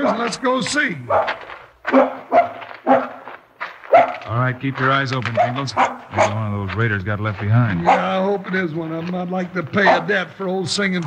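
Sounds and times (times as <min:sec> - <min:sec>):
dog barking: 0:00.0 - 0:00.4, 0:01.0 - 0:04.3, 0:05.3 - 0:06.5, 0:07.7 - 0:08.3, 0:09.7 - 0:10.3
speech: 0:00.0 - 0:02.4, 0:04.3 - 0:11.0.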